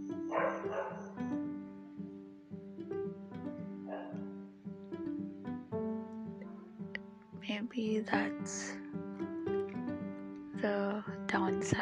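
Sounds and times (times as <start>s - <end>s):
steady tonal background: 0.0s - 11.8s
dogs barking outside: 0.3s - 1.2s, 3.8s - 4.3s
speech: 7.6s - 8.8s, 10.6s - 11.8s.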